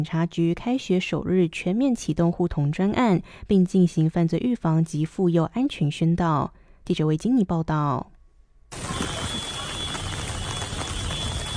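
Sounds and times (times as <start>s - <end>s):
speech: 0.0s - 8.1s
steady rain: 8.7s - 11.5s.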